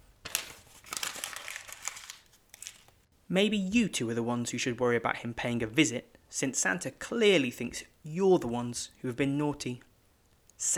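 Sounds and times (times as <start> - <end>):
paper drawing being crumpled up: 0.0 - 3.0
speech: 3.3 - 9.9.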